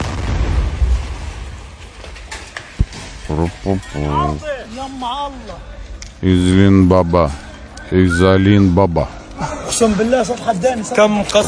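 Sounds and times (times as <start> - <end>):
heavy rumbling explosion from an airstrike on a building in a refugee camp: 0.0 - 3.3
sharp crack: 0.0 - 3.3
speech: 3.3 - 11.4.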